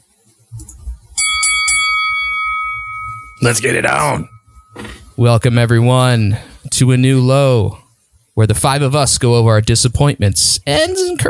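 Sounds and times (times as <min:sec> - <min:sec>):
bell struck with bright metallic tones: 0:01.2 - 0:05.2
speech: 0:03.4 - 0:04.3, 0:05.2 - 0:07.8, 0:08.4 - 0:11.2.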